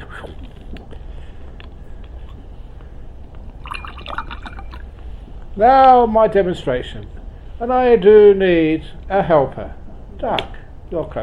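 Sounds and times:
fizzy drink being poured: 0:03.5 - 0:05.0
fizzy drink being opened: 0:03.6 - 0:04.9
speech: 0:05.6 - 0:11.2.

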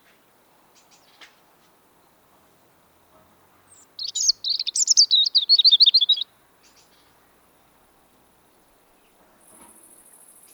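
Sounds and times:
European robin autumn song: 0:03.7 - 0:06.3.

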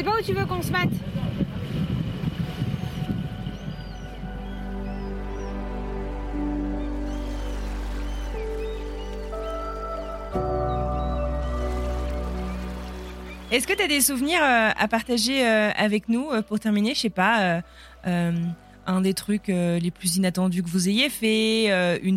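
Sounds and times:
speech: 0:00.0 - 0:01.8, 0:13.6 - 0:22.1
boat engine drone accelerating on a choppy sea under wind: 0:01.0 - 0:20.0.

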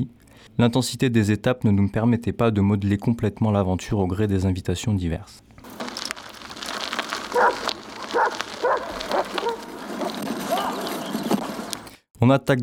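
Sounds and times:
speech: 0:00.0 - 0:05.8, 0:12.2 - 0:12.6
pack of dogs barking: 0:07.2 - 0:11.8.

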